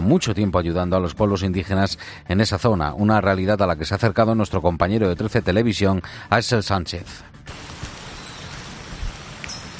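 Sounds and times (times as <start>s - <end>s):
speech: 0.1s - 7.6s
steady rain in the Peruvian Amazon: 7.5s - 9.7s
faint bird chirps: 8.1s - 9.7s.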